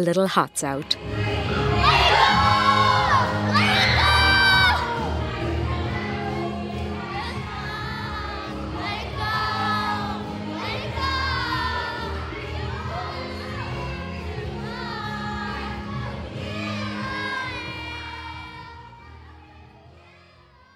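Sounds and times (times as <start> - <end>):
speech: 0.0 - 1.3
crowd of children cheering and shouting at a camp before a camp party: 1.1 - 20.7
children's high-pitched yelling and whoops: 1.5 - 5.1.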